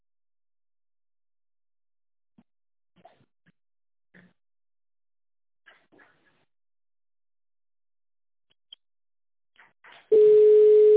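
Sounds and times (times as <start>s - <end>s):
telephone busy signal on a call to a company line: 10.1s - 10.9s.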